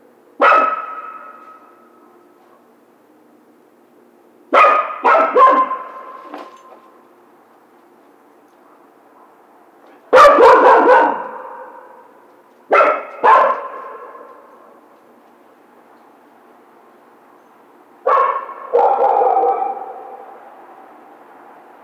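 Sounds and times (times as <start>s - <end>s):
coyote barking: 0.4s - 2.1s, 4.5s - 6.2s, 10.1s - 14.4s, 18.0s - 20.4s.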